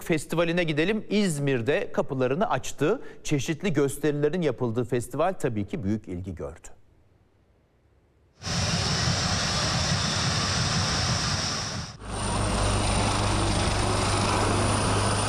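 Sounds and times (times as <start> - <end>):
speech: 0.1 - 6.8
fighter jets flying overhead at an airshow: 8.4 - 15.2.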